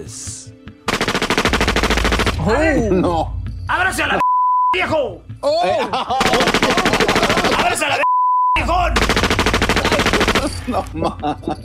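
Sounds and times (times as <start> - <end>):
speech: 0.0 - 0.6, 2.4 - 8.0, 8.7 - 9.1, 10.4 - 11.6
automatic gunfire: 0.9 - 2.4, 6.2 - 7.8, 9.0 - 10.7
man speaking and shouting: 2.4 - 5.9, 6.7 - 9.0
laughter: 5.5 - 8.0, 9.8 - 11.6.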